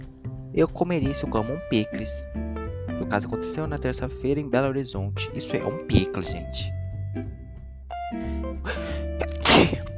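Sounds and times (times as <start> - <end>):
speech: 0.6 - 7.3
breathy intake: 8.1 - 9.5
person sneezing: 8.7 - 9.9.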